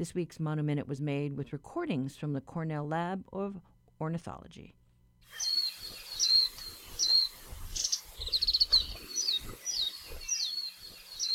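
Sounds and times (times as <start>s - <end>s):
speech: 0.0s - 5.6s
faint insect-like hiss: 5.3s - 11.3s
warbling white-eye mejiro singing: 5.3s - 11.3s.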